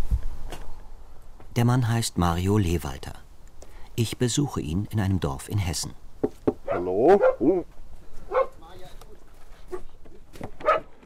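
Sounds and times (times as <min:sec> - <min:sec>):
speech: 0:01.6 - 0:03.2, 0:04.0 - 0:07.8
dog barking: 0:06.6 - 0:07.6, 0:08.3 - 0:08.6, 0:10.6 - 0:11.0.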